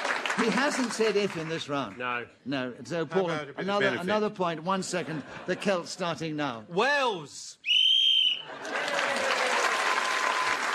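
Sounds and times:
audience applause: 0.0s - 1.8s, 8.4s - 10.7s
speech: 0.4s - 7.8s
shrill whistle blast ending the round: 7.6s - 8.5s.

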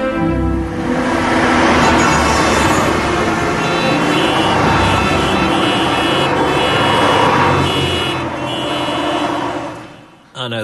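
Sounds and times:
engines rumbling: 0.2s - 10.6s
car horns: 2.3s - 10.3s
TV programme signature tune of sustained horn-like notes: 3.4s - 9.6s.

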